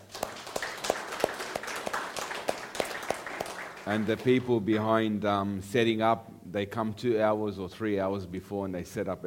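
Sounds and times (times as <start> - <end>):
crowd clapping rhythmically: 0.0 - 4.7
speech: 3.9 - 9.2.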